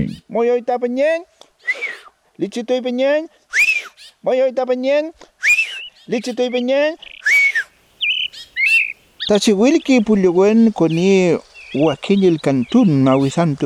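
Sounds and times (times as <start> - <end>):
speech: 0.0 - 3.6, 4.2 - 5.3, 6.1 - 7.1, 9.3 - 13.6
austral thrush melodic whistling call: 5.4 - 6.0, 7.0 - 13.6.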